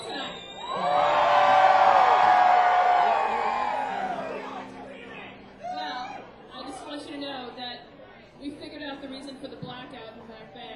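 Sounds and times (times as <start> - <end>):
large audience screaming and cheering: 0.5 - 4.9.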